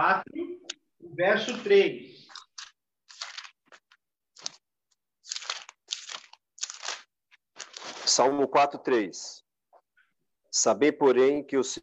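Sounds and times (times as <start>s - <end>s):
speech: 1.2s - 2.1s, 8.1s - 9.4s, 10.6s - 11.8s
thin Bible pages being flipped and rustled: 2.3s - 8.3s.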